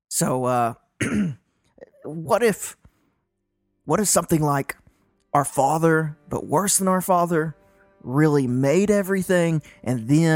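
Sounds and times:
speech: 0.2 - 1.4, 2.0 - 2.8, 3.9 - 10.3
person imitating a cough from smoking too much cigar smoke: 1.0 - 2.2
throat clearing: 1.0 - 2.2.

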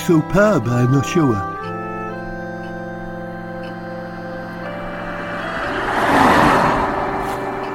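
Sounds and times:
speech: 0.1 - 1.5
Renault car driving past and stopping: 4.3 - 7.7.

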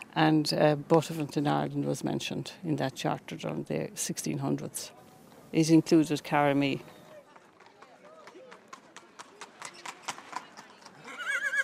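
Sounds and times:
speech: 0.2 - 7.0
horses clip-clopping on a hard street at a horse fair: 5.3 - 11.6
horse whinnying: 11.0 - 11.6.

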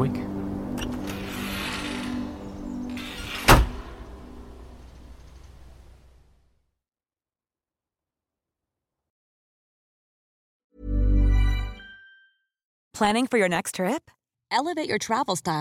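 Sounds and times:
low humming tone: 0.0 - 6.4
screen door slamming shut: 0.8 - 5.8
speech: 13.0 - 15.6.

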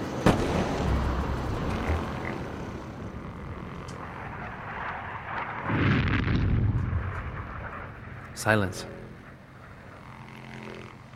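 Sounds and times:
distant bombs exploding during air raid: 0.2 - 2.1, 4.2 - 8.1
speech: 8.4 - 9.0.

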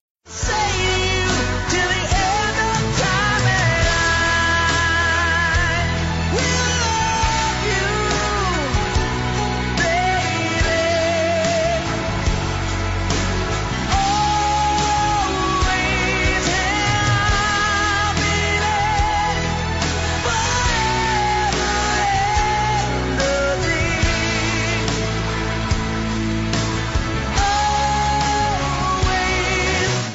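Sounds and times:
rock power ballad with sweeping strings and band backing: 0.2 - 30.1
person singing a sustained melody: 0.3 - 30.1.

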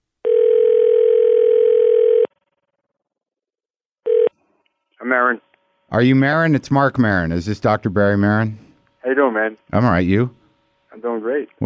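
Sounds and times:
telephone line tone while placing a call: 0.2 - 2.7, 4.1 - 4.3
speech: 5.1 - 10.4, 11.0 - 11.6.

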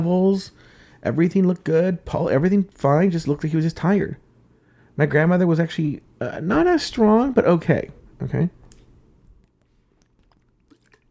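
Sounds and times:
speech: 0.0 - 4.2, 5.0 - 8.6
low hum: 0.0 - 11.1
mouth clicks: 8.7 - 11.1
person drinking water with wet sips: 9.4 - 11.1.

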